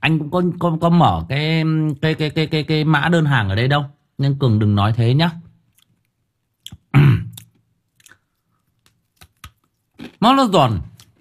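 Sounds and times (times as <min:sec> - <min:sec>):
speech: 0:00.0 - 0:05.4, 0:10.2 - 0:10.9
crunchy candy being chewed: 0:05.7 - 0:10.2.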